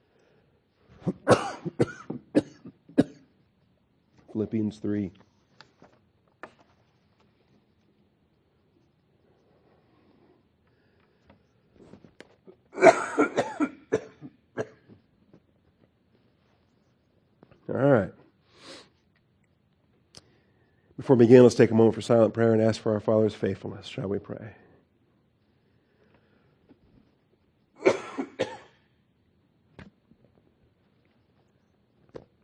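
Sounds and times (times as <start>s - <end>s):
man coughing: 1.0s - 3.3s, 12.8s - 14.9s, 27.8s - 28.8s
speech: 4.4s - 5.3s, 21.1s - 24.6s.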